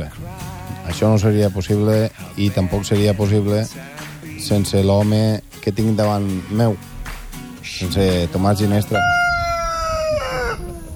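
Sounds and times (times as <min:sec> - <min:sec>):
speech: 0:00.9 - 0:06.9, 0:07.7 - 0:09.2
rooster crowing sound effect: 0:08.9 - 0:10.8.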